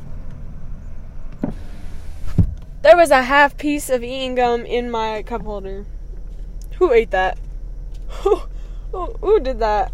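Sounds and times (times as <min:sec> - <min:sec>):
low rumble of road traffic heard from inside a car: 0:00.0 - 0:09.9
speech: 0:02.9 - 0:05.9, 0:06.8 - 0:07.4, 0:08.1 - 0:09.9.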